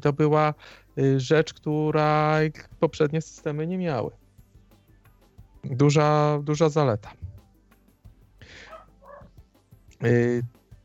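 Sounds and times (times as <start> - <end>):
speech: 0.0 - 4.2, 5.6 - 7.2, 10.0 - 10.6
short dog barks at a home: 8.6 - 9.3.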